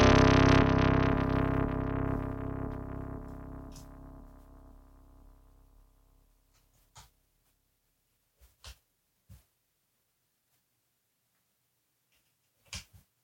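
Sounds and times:
short percussive hits: 0.0s - 5.7s
synth tone through tube distortion: 0.0s - 6.3s.

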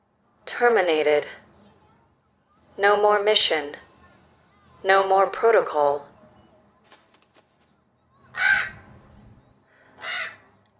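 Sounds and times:
speech: 0.6s - 1.4s, 2.8s - 3.8s, 4.8s - 6.1s
American crow cawing: 8.3s - 8.9s, 9.7s - 10.5s.

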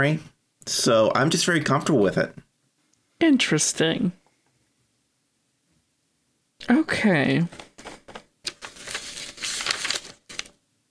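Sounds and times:
speech: 0.0s - 2.4s, 3.2s - 4.2s, 6.6s - 8.0s
paper being pulled out and rustling: 7.5s - 10.6s.

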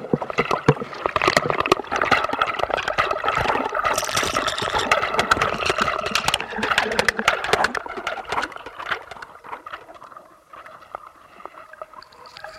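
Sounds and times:
underwater clicks and pops picked up by a hydrophone along the Toulon coast: 0.0s - 9.8s
quieter hollow underwater wash: 0.0s - 12.5s.

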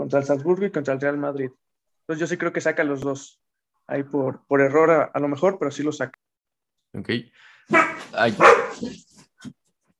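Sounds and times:
speech: 0.1s - 6.2s, 6.9s - 9.6s
small dogs barking: 7.7s - 9.0s.

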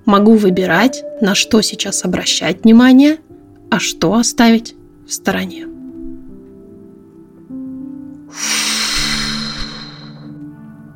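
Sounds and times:
soft steady music: 0.0s - 10.9s
speech: 0.1s - 5.7s, 8.3s - 8.6s
long breathy exhale through the mouth as part of a breathing exercise: 8.3s - 10.4s.

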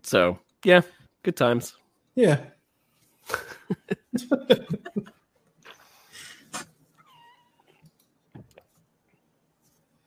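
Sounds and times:
speech: 0.1s - 2.6s, 3.2s - 5.2s
people laughing: 3.3s - 5.2s
cat meowing: 7.0s - 7.8s.

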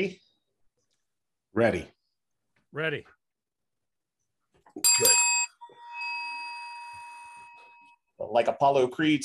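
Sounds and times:
speech: 0.0s - 0.2s, 1.5s - 2.0s, 2.7s - 3.2s, 4.8s - 5.2s, 8.2s - 9.2s
boxing ring bell clanging: 4.8s - 8.1s.

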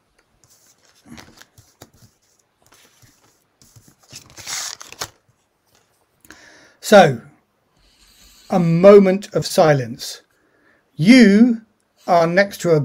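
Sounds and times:
playing cards drawn and handled from a deck: 0.4s - 5.9s
speech: 6.9s - 7.2s, 8.5s - 10.2s, 11.0s - 12.8s.

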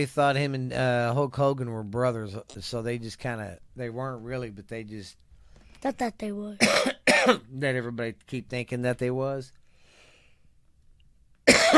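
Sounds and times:
speech: 0.0s - 5.2s, 5.8s - 9.6s
person coughing to clear something caught in the throat: 6.6s - 7.5s, 11.5s - 11.7s.

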